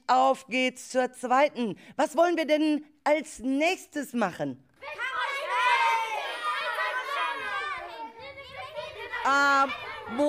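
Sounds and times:
speech: 0.1 - 5.2, 9.2 - 10.2
group of children talking loudly over one another: 4.8 - 10.2.

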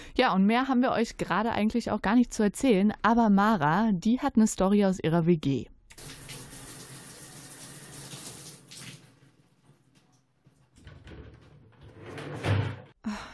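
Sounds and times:
speech: 0.2 - 6.2
shower water rushing: 6.0 - 10.0.

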